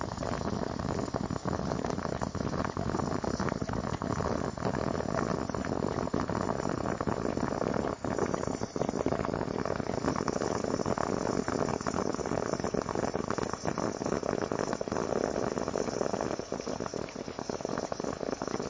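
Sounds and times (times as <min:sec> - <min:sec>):
coffee percolating: 0:00.0 - 0:18.6
pops and gurgles of percolating coffee: 0:00.0 - 0:18.6.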